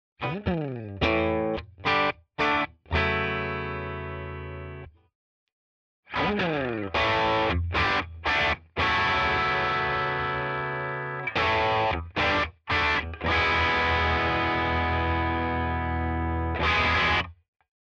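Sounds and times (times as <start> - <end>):
bright overdriven electric guitar through a drive pedal: 0.2 - 4.9, 6.1 - 17.3.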